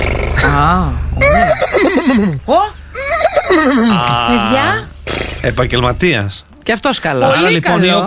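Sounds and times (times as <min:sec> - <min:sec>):
person imitating a horse neighing: 0:00.2 - 0:02.4, 0:02.9 - 0:04.9
speech: 0:00.5 - 0:02.8, 0:03.5 - 0:08.0.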